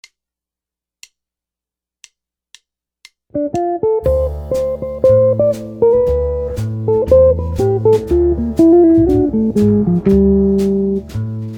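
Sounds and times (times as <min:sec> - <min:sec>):
jazz guitar licks: 0:03.3 - 0:11.5.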